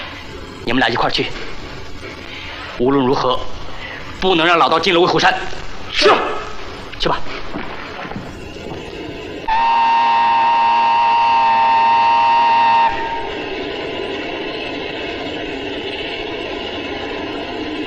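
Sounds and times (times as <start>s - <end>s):
train rumbling and clattering along: 0.0s - 9.6s, 10.6s - 17.8s
speech: 0.6s - 1.5s, 2.8s - 3.6s, 4.2s - 6.3s, 7.0s - 7.4s
train whistle blast: 9.5s - 13.6s.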